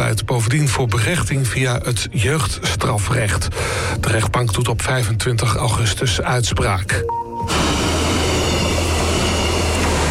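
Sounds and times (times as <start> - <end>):
speech: 0.4 - 7.7
train rumbling across railway bridge between Bad Nieuweschans and Leer: 7.5 - 10.0.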